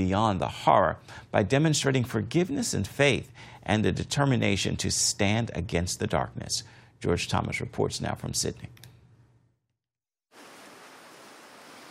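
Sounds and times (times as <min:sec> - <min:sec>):
speech: 0:00.0 - 0:08.8
ocean waves washing onto a beach: 0:10.4 - 0:11.8.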